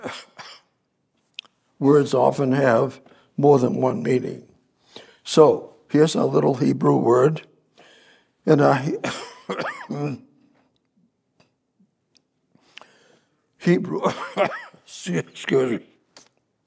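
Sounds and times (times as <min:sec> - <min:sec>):
person coughing and clearing the throat: 0:00.0 - 0:00.8, 0:09.0 - 0:10.3, 0:14.0 - 0:14.9
speech: 0:01.8 - 0:04.5, 0:05.3 - 0:07.5, 0:08.4 - 0:10.3, 0:13.6 - 0:15.9.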